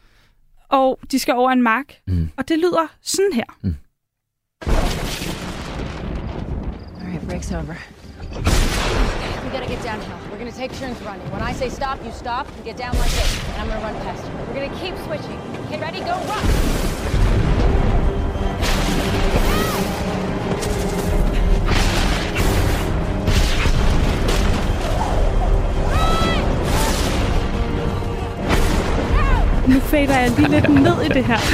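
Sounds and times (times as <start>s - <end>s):
speech: 0.8s - 3.8s, 7.3s - 17.2s, 29.7s - 31.5s
lightning strike explosive crack over an open field: 4.6s - 7.6s, 8.4s - 31.5s
sustained thunder roar and rumble during a thunderstorm: 4.7s - 31.5s
faint whistling tones: 17.7s - 18.9s
laughter: 29.6s - 31.5s.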